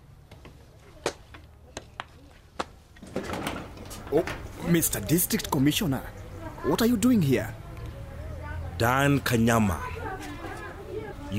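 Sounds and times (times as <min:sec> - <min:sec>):
door scraping as it swings open: 0:03.0 - 0:04.9
speech: 0:04.1 - 0:07.6, 0:08.8 - 0:09.9.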